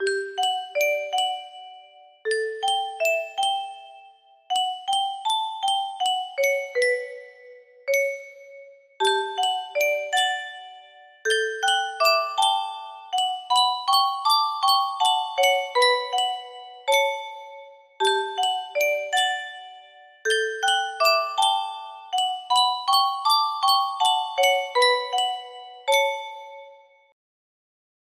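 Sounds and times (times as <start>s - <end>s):
music box melody: 0.0s - 27.1s.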